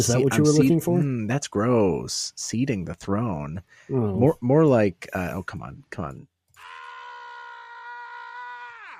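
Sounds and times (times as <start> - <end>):
speech: 0.0 - 6.3
sustained high-pitched human scream: 6.6 - 8.9.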